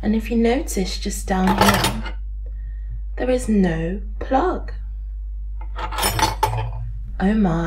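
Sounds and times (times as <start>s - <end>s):
speech: 0.0s - 2.2s, 3.2s - 4.8s, 7.2s - 7.6s
dirty dishes and cutlery clinking as they are handled for cleaning: 5.6s - 6.8s.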